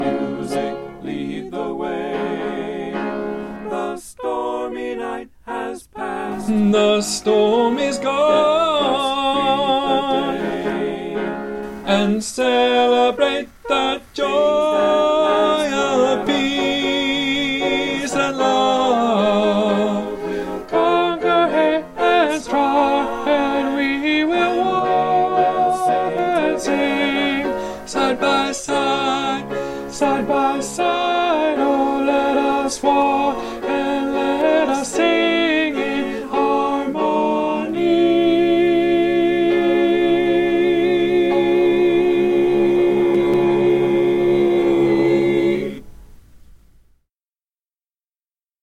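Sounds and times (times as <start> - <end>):
tenor singing solo: 0.0 - 45.9.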